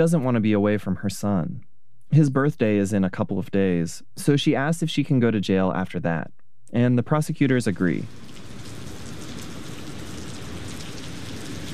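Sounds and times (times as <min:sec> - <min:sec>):
speech: 0:00.0 - 0:08.3
heavy rain on hard surfaces outside a courthouse in Paris Texas: 0:08.1 - 0:11.7.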